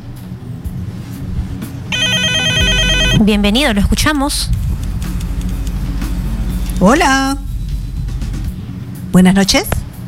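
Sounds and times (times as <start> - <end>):
low steady rumble: 0.1 - 10.0
telephone ringing with an incoming call: 1.9 - 3.3
speech: 3.2 - 4.6, 6.8 - 7.4, 9.2 - 9.8.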